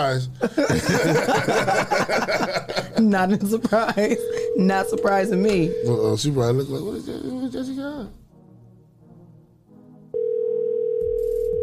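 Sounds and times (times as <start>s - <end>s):
speech: 0.0s - 8.2s
laughter: 0.4s - 4.5s
ringing tone of an outgoing phone call: 4.0s - 6.4s, 10.2s - 11.6s.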